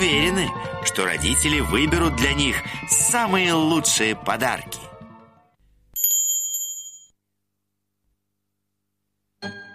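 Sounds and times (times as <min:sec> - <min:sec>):
speech: 0:00.0 - 0:04.8
small bell ringing: 0:06.0 - 0:07.2.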